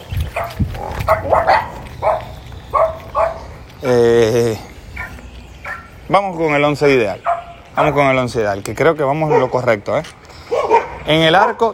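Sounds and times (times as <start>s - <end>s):
dog barking: 0.3s - 3.5s, 5.0s - 5.9s, 7.2s - 8.0s, 9.2s - 9.6s, 10.4s - 11.7s
speech: 0.4s - 1.6s, 3.8s - 4.7s, 6.1s - 10.4s, 11.1s - 11.7s.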